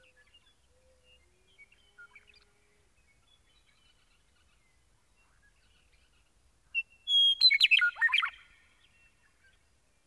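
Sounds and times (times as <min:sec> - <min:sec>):
meadowlark singing whistles and gurgling notes: 0:07.1 - 0:08.5.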